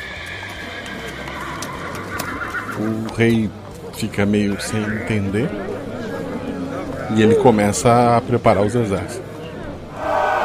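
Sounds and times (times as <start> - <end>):
horses neighing and whinnying: 0.0 - 9.2
dense hoof clip-clops of arriving horses: 0.0 - 9.6
broad noise: 0.0 - 10.4
speech: 2.8 - 5.7, 7.1 - 9.2.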